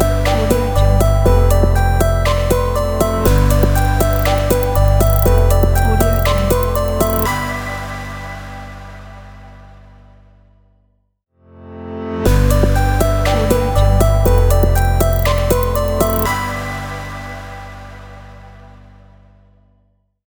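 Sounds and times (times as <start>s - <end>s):
electronic logo jingle: 0.1s - 7.3s, 12.4s - 16.4s.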